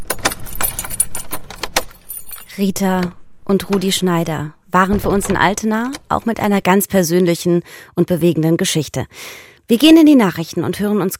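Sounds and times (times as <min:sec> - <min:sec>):
old key locking a door of a former apartment in a railway station building: 0:00.0 - 0:06.6
speech: 0:02.6 - 0:11.1.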